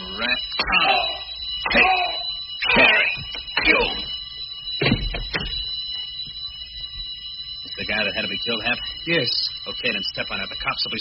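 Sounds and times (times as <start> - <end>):
alarm bell ringing: 0.0 - 10.9
man shouting: 0.7 - 1.2, 1.8 - 2.2
speech: 8.4 - 10.9.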